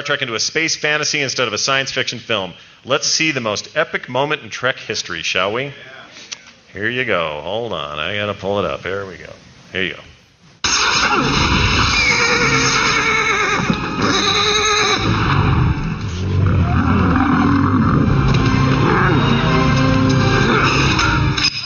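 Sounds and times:
speech: 0.0 - 5.9, 6.8 - 10.1, 11.1 - 11.4
horse neighing and whinnying: 10.7 - 18.1
dense rumbling background: 14.9 - 20.7.

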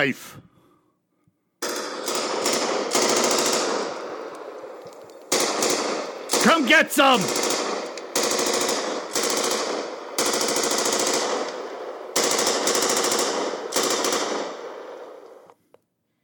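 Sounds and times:
speech: 0.0 - 0.5, 6.4 - 7.5
machine gun fire in rapid-fire bursts: 1.6 - 4.7, 5.3 - 15.2.

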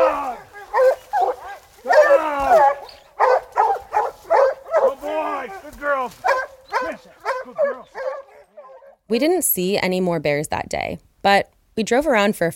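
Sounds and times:
hunting hounds barking and yipping: 0.0 - 9.0
speech: 9.1 - 12.5.

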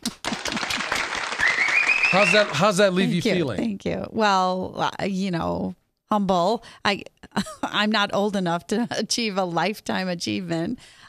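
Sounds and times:
many hands clapping in applause: 0.0 - 3.0
thin whistle: 1.4 - 2.5
speech: 2.1 - 11.0.

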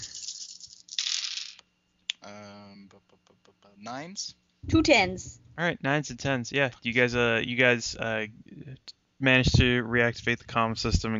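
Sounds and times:
dice rattling in a hand: 0.0 - 1.6
speech: 2.2 - 11.1.

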